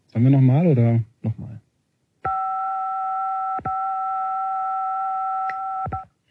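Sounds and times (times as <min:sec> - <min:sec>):
speech: 0:00.1 - 0:01.6
telephone keypad DTMF tone: 0:02.3 - 0:06.0.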